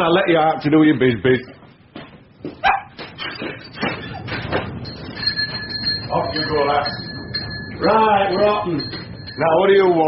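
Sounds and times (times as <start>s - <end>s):
speech: 0.0s - 1.6s, 6.1s - 7.1s, 7.8s - 10.0s
dog barking in excited yaps: 2.6s - 3.0s.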